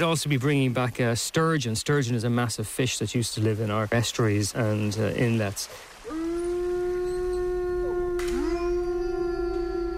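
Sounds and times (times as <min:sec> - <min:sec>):
speech: 0:00.0 - 0:05.9
second wolf voice sliding up: 0:06.0 - 0:09.9
wolf howling: 0:06.0 - 0:09.9.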